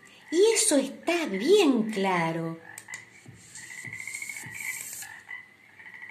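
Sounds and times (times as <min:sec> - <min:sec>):
speech: 0:00.7 - 0:02.7
frog-like low throaty croaking: 0:02.6 - 0:06.1.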